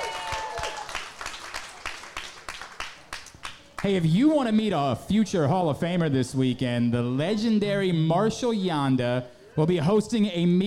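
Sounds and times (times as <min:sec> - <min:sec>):
audience applauding football players at a live sports radio show: 0:00.0 - 0:04.0
speech: 0:03.8 - 0:10.6.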